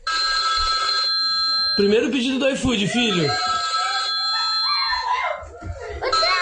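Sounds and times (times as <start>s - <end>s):
steady electronic ringing tone: 0.0s - 2.2s, 2.8s - 5.0s
speech: 1.8s - 3.5s
laughter: 2.7s - 6.4s
child shrieking excitedly at first food delivery order: 4.6s - 5.4s.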